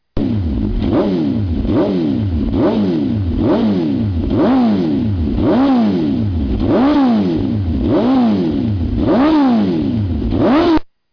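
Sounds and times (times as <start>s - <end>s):
Hamaguchi exhaust on Suzuki GSXR1000 motorcycle: 0.2s - 10.9s.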